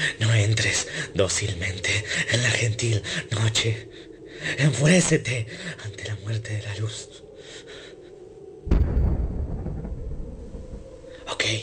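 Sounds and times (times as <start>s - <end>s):
speech: 0.0s - 7.2s, 11.5s - 11.6s
explosion boom and rumble: 8.7s - 11.0s.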